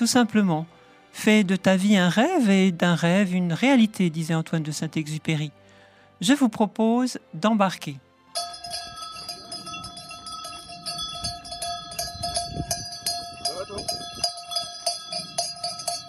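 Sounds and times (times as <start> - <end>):
speech: 0.0 - 5.6, 6.2 - 8.5
small bell tinkling: 8.4 - 16.0.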